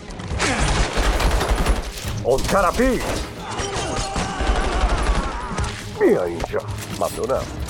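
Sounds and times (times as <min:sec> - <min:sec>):
rapid gunfire volley: 0:00.4 - 0:05.7
speech: 0:02.3 - 0:03.3, 0:06.0 - 0:07.6.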